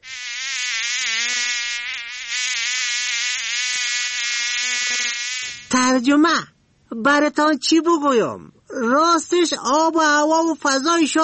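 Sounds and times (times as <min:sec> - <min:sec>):
mosquitoes and flies buzzing: 0:00.0 - 0:05.8
speech: 0:05.4 - 0:11.2.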